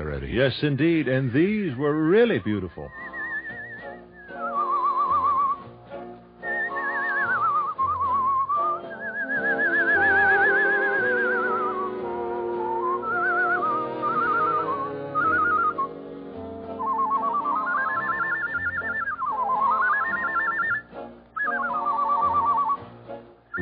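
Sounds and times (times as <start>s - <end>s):
soft orchestral accompaniment: 0.0s - 23.5s
speech: 0.2s - 3.0s
man whistling a warbling melody imitating birdsong: 2.9s - 5.6s, 6.4s - 16.0s, 16.8s - 22.8s.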